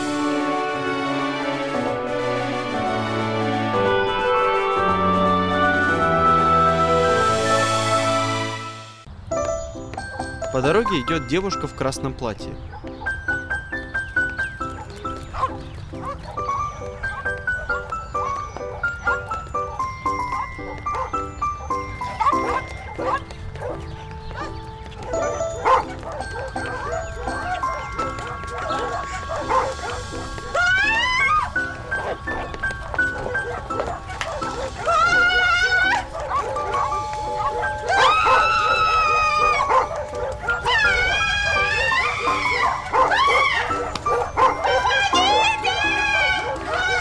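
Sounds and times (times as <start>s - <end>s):
bright tonal music-like sounds: 0.0s - 46.9s
speech: 10.6s - 12.9s
dogs barking as they chase a woman: 12.6s - 46.9s
jingling: 12.7s - 46.9s.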